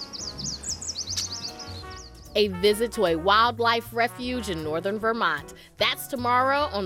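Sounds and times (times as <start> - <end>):
chorus of migrating birds chirping and trilling: 0.0 - 2.4
speech: 2.4 - 6.8.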